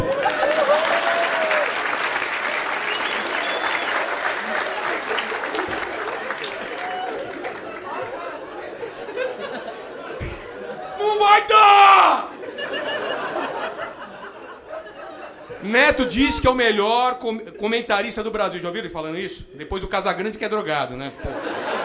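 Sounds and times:
audience applause: 0:00.0 - 0:09.9
people cheering: 0:00.0 - 0:14.3
laughter: 0:03.0 - 0:16.4, 0:21.1 - 0:21.8
speech: 0:16.0 - 0:21.6.

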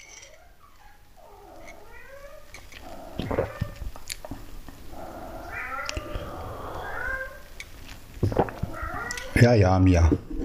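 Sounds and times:
cat meowing in drawn-out wavering calls: 0:01.2 - 0:03.9, 0:04.9 - 0:07.6, 0:08.5 - 0:09.4
speech: 0:09.4 - 0:10.3.

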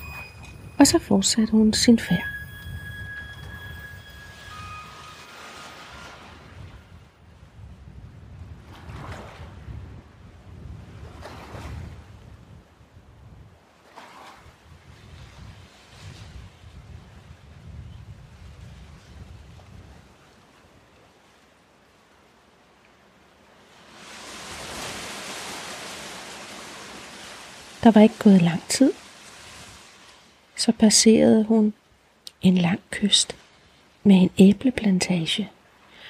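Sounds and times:
strong wind roaring with gusting surges: 0:00.0 - 0:13.6, 0:14.6 - 0:20.2
speech: 0:00.8 - 0:02.4, 0:27.8 - 0:29.0, 0:30.6 - 0:31.8, 0:32.4 - 0:33.4, 0:34.0 - 0:35.6.

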